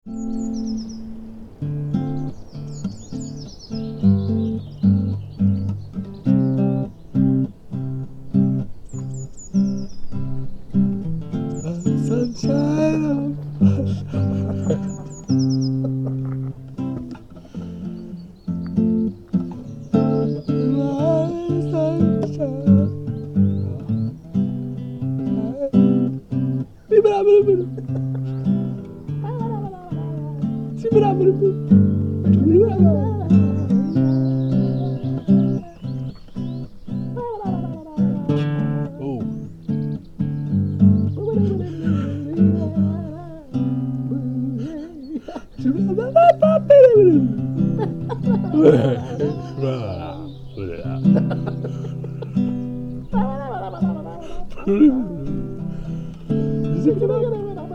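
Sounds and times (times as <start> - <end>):
hippie song: 0.0 - 57.7
laughter: 12.4 - 17.8, 26.9 - 30.3, 41.0 - 57.7.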